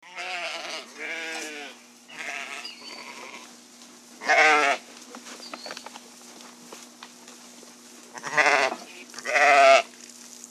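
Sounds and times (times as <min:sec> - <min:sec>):
sheep bleating: 0:00.0 - 0:03.5, 0:04.2 - 0:04.8, 0:08.1 - 0:09.9
steady low hum: 0:00.0 - 0:10.4.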